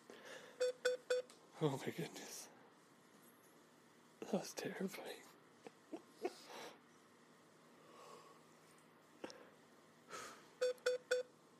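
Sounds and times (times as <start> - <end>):
short electronic beeps: 0.6 - 1.3, 10.6 - 11.3
speech: 1.6 - 2.4, 4.3 - 5.3.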